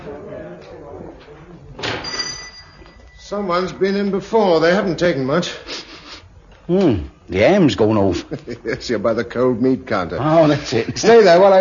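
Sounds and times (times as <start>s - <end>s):
speech: 0.1s - 2.4s, 3.2s - 5.9s, 6.7s - 11.6s
shop door opening with a soft thud and rattle: 1.7s - 2.6s.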